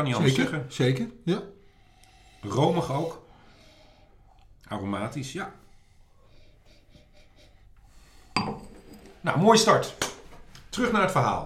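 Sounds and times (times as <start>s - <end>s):
speech: 0.0s - 1.6s, 2.4s - 3.2s, 4.6s - 5.6s, 9.2s - 10.1s, 10.8s - 11.4s
wine glass set down on a hard surface with a sharp clink: 8.4s - 9.1s.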